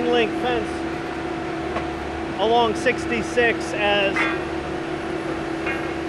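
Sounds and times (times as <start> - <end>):
railroad maintenance machinery blowing exhaust: 0.0 - 6.0
railroad maintenance machinery placing a railroad tie droning: 0.0 - 6.0
speech: 0.2 - 0.8, 2.4 - 4.6
faint metallic clanks against the rails: 4.0 - 4.6, 5.6 - 6.0.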